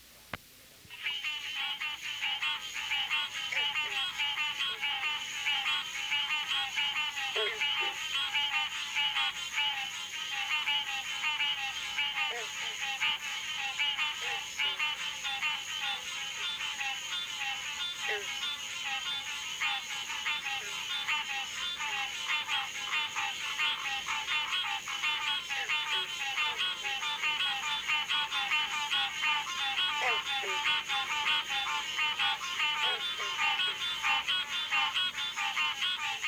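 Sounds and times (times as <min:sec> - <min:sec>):
chorus of frog calls on a Florida summer evening: 0:00.9 - 0:36.2.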